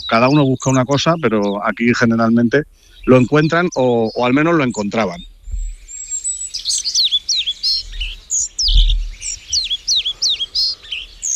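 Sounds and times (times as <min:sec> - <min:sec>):
low rumble: 0:00.0 - 0:05.9, 0:07.8 - 0:09.6
pied flycatcher chirping and trilling: 0:00.0 - 0:11.3
speech: 0:00.1 - 0:05.3.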